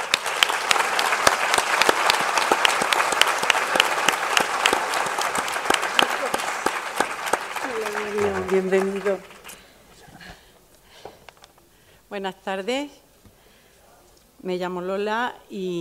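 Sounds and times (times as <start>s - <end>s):
audience applause for a speaker at a talk: 0.0s - 9.8s
speech: 8.6s - 9.3s, 12.2s - 13.0s, 14.4s - 15.7s.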